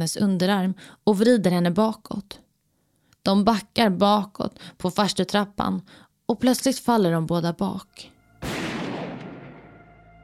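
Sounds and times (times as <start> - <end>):
speech: 0.0 - 2.4, 3.2 - 8.1
pistol gunshot with echo: 8.4 - 9.8.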